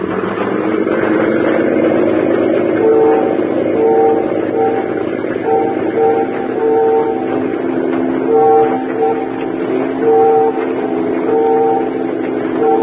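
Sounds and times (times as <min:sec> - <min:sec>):
boat engine rumble: 0:00.0 - 0:12.8
ferry whistle blasts: 0:02.8 - 0:07.4, 0:08.3 - 0:09.4, 0:10.0 - 0:12.8.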